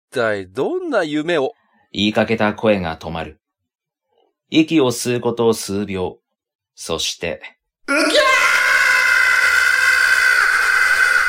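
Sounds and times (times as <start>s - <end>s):
speech: 0.1s - 3.4s, 4.5s - 6.2s, 6.8s - 8.3s
long piercing high-pitched scream: 7.9s - 11.2s.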